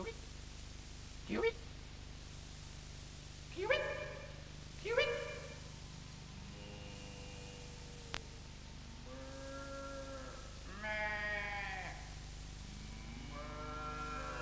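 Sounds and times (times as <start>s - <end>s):
steady low hum: 0.0s - 14.4s
sheep bleating as livestock are driven toward a paddock: 6.3s - 8.2s, 9.0s - 12.2s, 12.8s - 14.4s.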